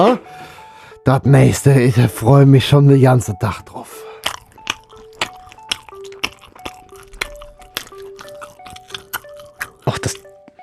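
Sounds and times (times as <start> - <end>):
speech: 0.0 - 0.4, 1.0 - 4.0
crunchy chewing of a Spreewald pickled gherkin from Brandenburg: 4.0 - 10.4.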